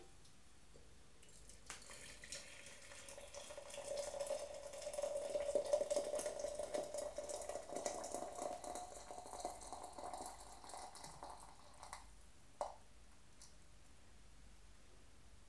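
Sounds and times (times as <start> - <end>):
teapot being filled with boiling water: 1.2 - 12.7.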